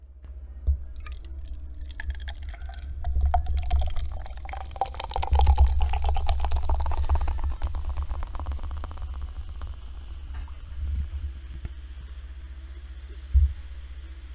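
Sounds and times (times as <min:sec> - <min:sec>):
low hum: 0:00.0 - 0:14.3
soda from a can poured into a glass: 0:01.0 - 0:10.8
soda crackling fizz and bubbling pops in a glass: 0:01.0 - 0:11.9.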